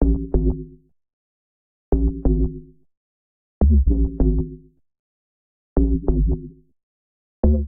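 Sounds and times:
MIDI bass line in A major: 2.0s - 2.6s, 3.6s - 4.6s, 5.8s - 6.5s, 7.4s - 7.6s.

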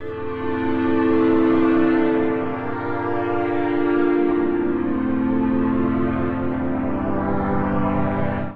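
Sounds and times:
nostalgic strings accompaniment in A minor at 112 bpm: 0.0s - 8.5s.

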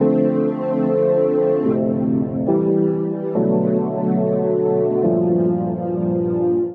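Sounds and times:
synthesizer pads in D major: 0.0s - 6.7s.

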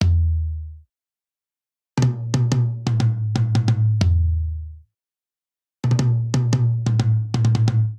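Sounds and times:
swing RnB drum groove on toms only in 6/8 at 90 bpm: 2.0s - 4.4s, 5.8s - 7.9s.

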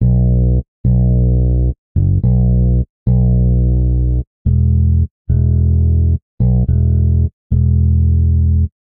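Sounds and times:
chill bass line in B minor: 0.0s - 8.8s.

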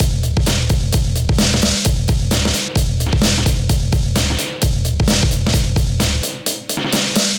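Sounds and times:
hip hop MIDI drum beat: 0.0s - 7.3s.

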